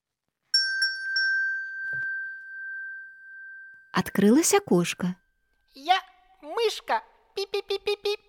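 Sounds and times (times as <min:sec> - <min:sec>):
small bell ringing: 0:00.5 - 0:05.5
speech: 0:04.0 - 0:05.2, 0:06.7 - 0:08.2.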